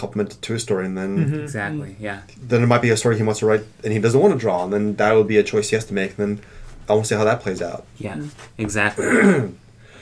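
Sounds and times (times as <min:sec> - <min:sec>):
speech: 0:00.0 - 0:09.6
person clearing throat: 0:09.0 - 0:09.6
person giving a short cough: 0:09.0 - 0:09.6.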